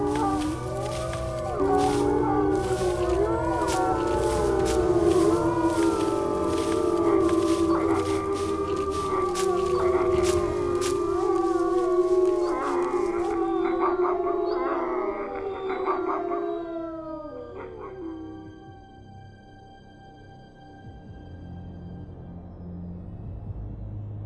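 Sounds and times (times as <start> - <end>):
pack of wolves howling in chorus: 0.0 - 18.8.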